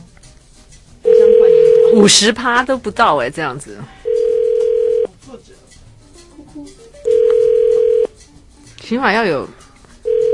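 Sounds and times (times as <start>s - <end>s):
phone ringback tone: 1.0s - 2.2s, 4.0s - 5.1s, 7.0s - 8.1s, 10.0s - 10.3s
speech: 2.0s - 4.0s, 8.9s - 9.6s.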